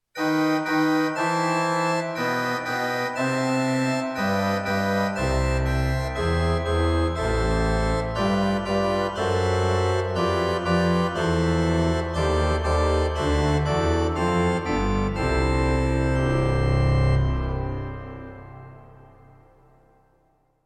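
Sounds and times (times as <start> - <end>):
augmented pipe organ: 0.2 - 20.1.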